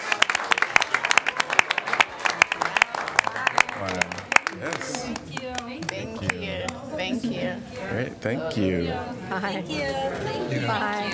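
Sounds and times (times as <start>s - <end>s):
small audience applauding: 0.0s - 6.8s
speech: 7.6s - 11.1s.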